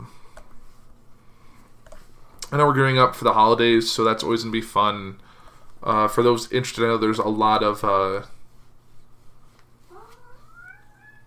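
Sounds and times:
steady low hum: 0.0s - 11.2s
speech: 2.5s - 5.2s, 5.8s - 8.4s
cat meowing at a closed door: 9.9s - 11.2s.

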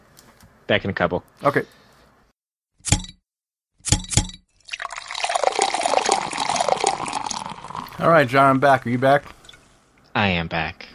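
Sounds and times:
speech: 0.7s - 1.8s, 8.0s - 9.4s, 10.2s - 10.8s
bottle clinking: 3.9s - 8.0s
beer pouring into a glass: 4.6s - 9.6s.

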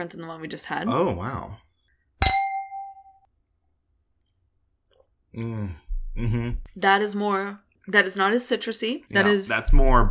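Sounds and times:
speech: 0.0s - 1.6s, 5.3s - 10.0s
wine glasses clinking in a toast: 2.2s - 3.3s.

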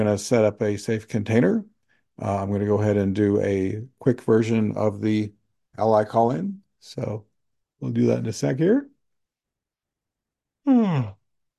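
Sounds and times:
speech: 0.0s - 8.9s, 10.6s - 11.2s
person yawning during an energy-healing session: 10.7s - 11.2s.

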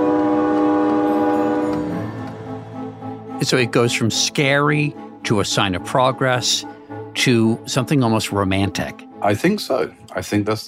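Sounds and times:
steam train whistle blowing: 0.0s - 3.4s
rumbling rail noise: 0.0s - 7.8s
speech: 3.4s - 10.6s.

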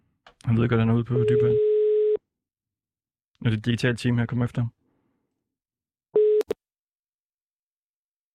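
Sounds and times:
speech: 0.5s - 1.7s, 3.4s - 4.8s
telephone ringing tone over the line: 1.2s - 2.2s, 6.2s - 6.6s.

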